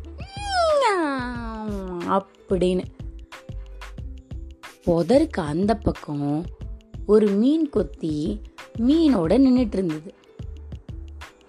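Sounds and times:
cat meowing: 0.2s - 1.6s
speech: 2.1s - 3.0s, 4.8s - 10.2s.

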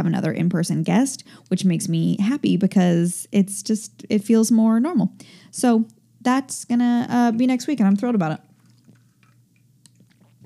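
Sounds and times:
speech: 0.0s - 8.5s
person taking a swig of water with wet gulping: 7.2s - 10.4s.

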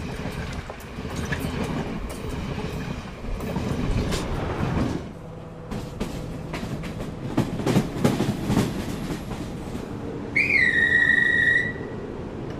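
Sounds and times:
clattering train wheels: 0.0s - 10.0s
old diesel or electric train rumbling: 0.0s - 12.5s
loud sustained train horn blast: 10.3s - 12.0s.

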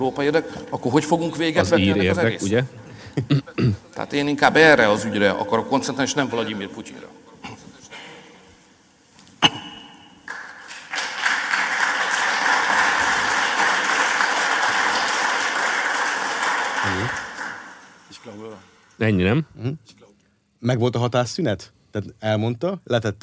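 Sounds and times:
speech: 0.0s - 7.2s, 19.0s - 20.0s, 20.6s - 23.2s
audience applause after a speech: 10.3s - 18.5s.

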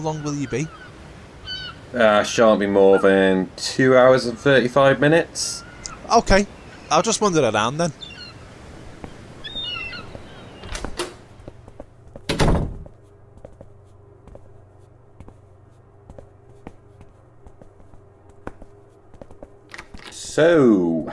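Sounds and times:
speech: 0.0s - 0.8s, 1.9s - 8.1s, 20.4s - 21.1s
low steady hum: 0.0s - 21.1s
loud door slam: 12.3s - 12.8s
quick door knocks or clunks: 12.3s - 12.9s.

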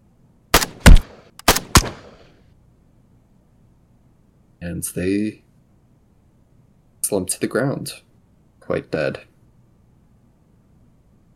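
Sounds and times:
loud sharp gunshots in a lobby: 0.6s - 2.3s
speech: 4.6s - 5.4s, 7.1s - 8.1s, 8.7s - 9.3s.

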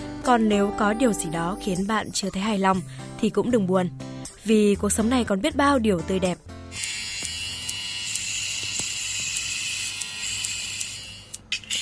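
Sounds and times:
speech: 0.2s - 7.0s
electric hair clippers buzzing during a haircut: 6.7s - 11.7s.

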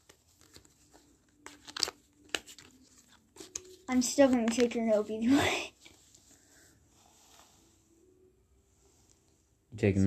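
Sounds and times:
deck of cards being shuffled during a card game: 0.0s - 6.2s
speech: 3.9s - 5.7s, 9.8s - 10.0s.

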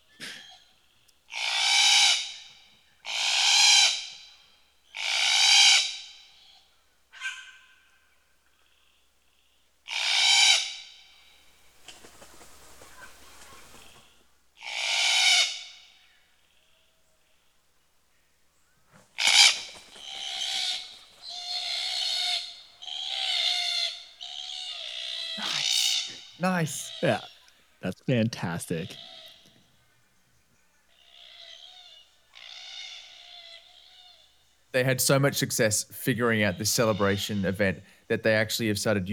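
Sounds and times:
young red-tailed black cockatoos calling as they leave the nest: 0.4s - 8.1s, 9.9s - 11.4s, 12.8s - 16.2s, 19.2s - 27.6s, 28.9s - 29.7s, 30.9s - 34.6s
speech: 26.4s - 29.1s, 34.8s - 39.1s.

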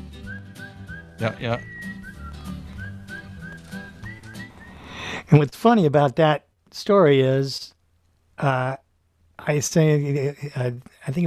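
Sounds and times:
soft instrumental backing: 0.0s - 5.0s
bright cheerful whistled melody: 0.0s - 5.2s
speech: 1.2s - 1.7s, 5.3s - 7.7s, 8.4s - 8.8s, 9.5s - 11.2s.

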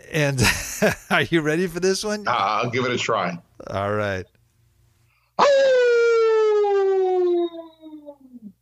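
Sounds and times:
speech: 0.1s - 4.4s
person imitating a hound dog howl: 5.4s - 8.6s.

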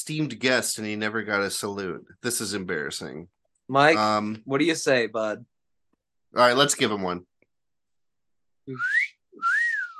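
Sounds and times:
speech: 0.0s - 5.5s, 6.3s - 7.3s, 8.7s - 9.5s
person wolf whistling: 8.7s - 9.9s.

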